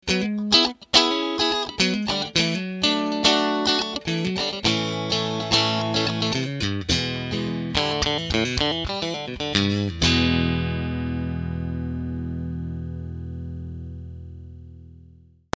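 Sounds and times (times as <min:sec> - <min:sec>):
overdriven guitar with boost pedal: 0:00.0 - 0:15.4.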